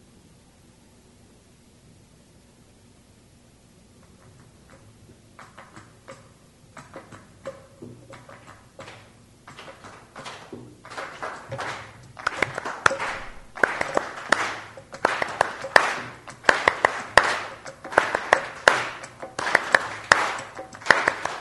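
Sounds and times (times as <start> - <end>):
flamenco music: 4.0 - 21.4
rhythmic hand clapping: 5.4 - 21.4.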